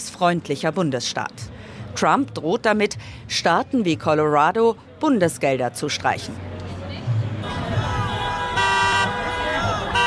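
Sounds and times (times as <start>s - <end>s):
demonstration crowd: 0.0s - 10.0s
steady traffic noise: 0.0s - 10.0s
speech: 0.2s - 6.5s
passing cars honking horns at an anti-government demonstration in Kansas City, Missouri: 7.5s - 10.0s.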